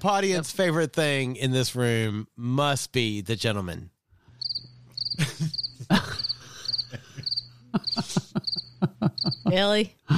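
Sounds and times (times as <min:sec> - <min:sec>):
speech: 0:00.0 - 0:03.9, 0:05.1 - 0:06.1, 0:07.7 - 0:10.1
cricket chirping in short high trills: 0:04.4 - 0:09.5
laughter: 0:05.2 - 0:09.8.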